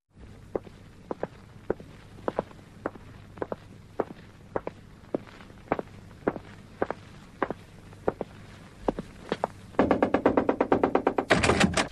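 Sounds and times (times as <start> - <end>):
footsteps walking: 0.2 - 9.8
knocking on door: 9.8 - 11.8.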